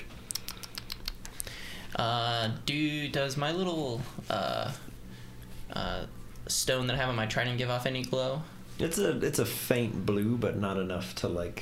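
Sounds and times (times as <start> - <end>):
swarm of tiny rapid clicks underground: 0.2 - 1.6
speech: 1.9 - 4.9, 5.7 - 11.6.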